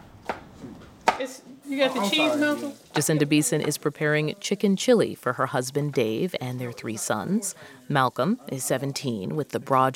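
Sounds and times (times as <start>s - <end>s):
knife chopping peppers on a cutting board in a home kitchen: 0.2s - 1.3s
speech: 1.2s - 9.9s.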